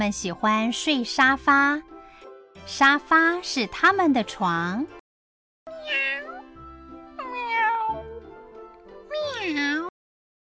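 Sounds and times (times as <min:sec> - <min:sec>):
speech: 0:00.0 - 0:01.9, 0:02.6 - 0:05.0
cat meowing: 0:05.7 - 0:08.3, 0:09.1 - 0:09.9.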